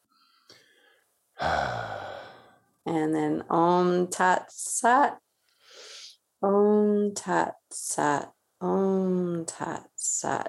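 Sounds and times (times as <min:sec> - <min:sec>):
long breathy exhale during a guided breathing exercise: 0:00.3 - 0:02.6, 0:05.6 - 0:06.1
speech: 0:02.9 - 0:05.2, 0:06.4 - 0:10.4.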